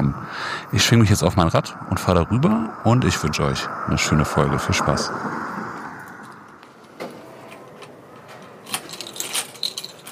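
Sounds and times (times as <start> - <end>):
steady outdoor hum: 0.0 - 10.1
speech: 0.7 - 5.4
keys jingling at library entrance: 7.4 - 10.1.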